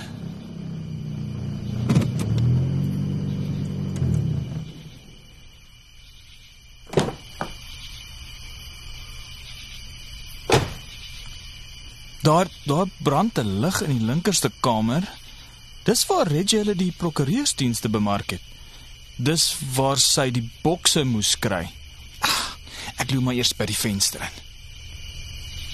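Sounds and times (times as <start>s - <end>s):
car engine rumbling in front of a farm homestead: 0.0s - 5.9s
car door opening: 1.7s - 2.6s, 6.9s - 7.6s, 10.5s - 11.0s
car door shutting: 1.7s - 2.7s, 3.7s - 5.0s, 6.9s - 7.6s, 10.5s - 11.0s
speech: 12.2s - 15.2s, 15.8s - 18.6s, 19.2s - 22.3s, 22.9s - 24.4s.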